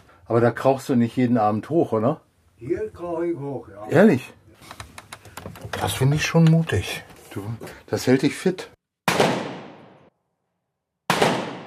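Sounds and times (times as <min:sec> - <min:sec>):
speech: 0:00.3 - 0:04.8, 0:05.8 - 0:08.8
gunshots from a large-caliber pistol and small-caliber guns at a shooting range: 0:09.0 - 0:10.1, 0:11.1 - 0:11.6.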